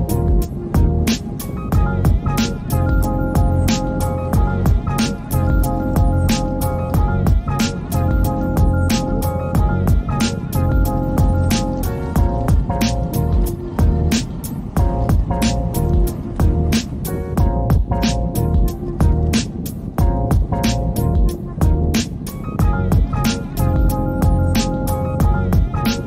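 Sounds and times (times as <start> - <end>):
faint traffic: 0.0 - 26.0
low mechanical rumble of a drawbridge: 0.0 - 26.0.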